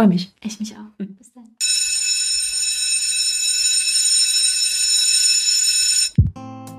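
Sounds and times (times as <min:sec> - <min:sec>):
speech: 0:00.0 - 0:01.7
loud electric school bell ringing for end of break: 0:01.6 - 0:06.2.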